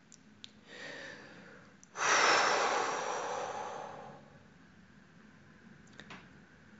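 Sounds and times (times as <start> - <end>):
hiss: 0.0 - 4.7
deep calming breath taken in a lift: 0.6 - 4.5.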